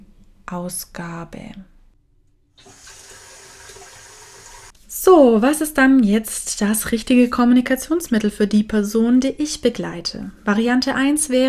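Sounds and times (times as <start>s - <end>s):
speech: 0.5s - 1.7s, 5.1s - 11.4s
water pouring from a tap: 2.6s - 4.7s.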